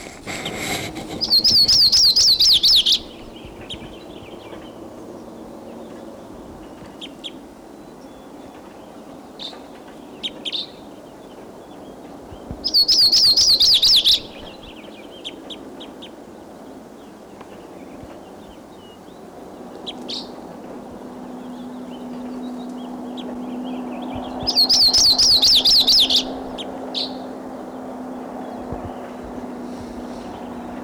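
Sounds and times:
Type 2 crossbill chirping in a tree: 0.0s - 3.4s, 12.7s - 14.5s, 21.4s - 30.8s
soft outdoor hum: 0.0s - 30.8s.

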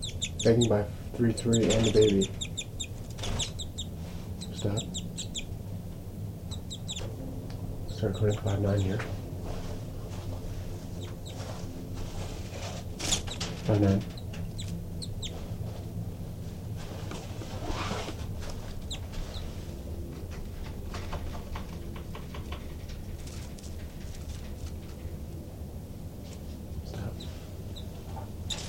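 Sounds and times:
agitated birds clucking and chirping near nest: 0.0s - 9.7s, 10.3s - 16.4s, 18.2s - 25.2s, 27.0s - 28.6s
low rumbling background: 0.0s - 28.6s
speech: 0.4s - 2.5s, 4.6s - 5.0s, 8.0s - 9.2s, 13.7s - 14.1s.

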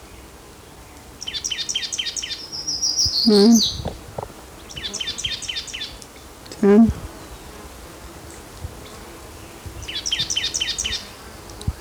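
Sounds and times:
grey warbler singing: 1.2s - 3.9s, 4.6s - 6.0s, 8.8s - 11.8s
speech: 3.2s - 4.0s, 6.6s - 7.0s.

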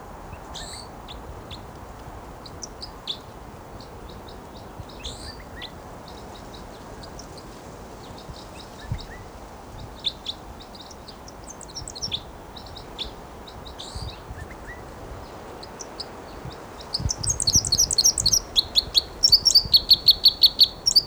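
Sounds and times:
steady outdoor noise: 0.0s - 21.0s
wild bird flight song: 0.3s - 21.0s
high bird chirps: 17.0s - 21.0s.

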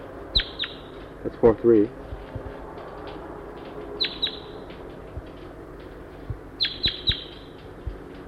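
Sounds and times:
wild female crossbill calls: 0.3s - 0.9s, 4.0s - 4.6s, 6.5s - 7.6s
speech: 1.2s - 2.0s.

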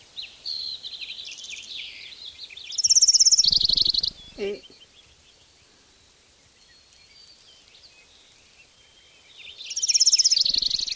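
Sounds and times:
bird chirping: 0.0s - 10.9s
speech: 4.4s - 4.8s.

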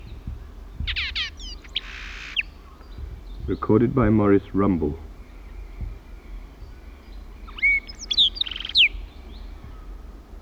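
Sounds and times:
Horsefall blackbird singing atop a pine tree on Isla Victoria: 0.0s - 3.5s, 5.2s - 9.8s
Horsefall blackbird buzzy trill: 0.0s - 10.0s
low outdoor rumble: 0.0s - 10.4s
speech: 3.5s - 5.1s.

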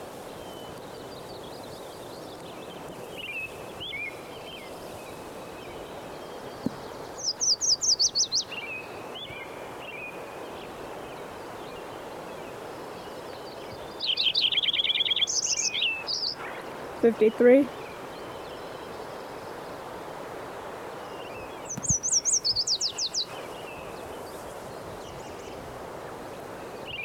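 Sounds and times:
Wilson's warbler singing: 0.4s - 19.8s, 21.0s - 25.6s, 26.4s - 27.0s
soft high bird calls: 3.2s - 11.1s, 12.6s - 19.7s, 21.0s - 27.0s
speech: 17.0s - 17.8s.

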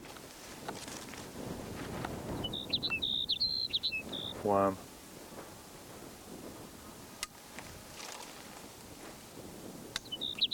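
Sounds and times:
steady low wind-like noise: 0.0s - 10.5s
Sage Sparrow song: 2.2s - 4.8s, 9.9s - 10.5s
speech: 4.4s - 4.9s.

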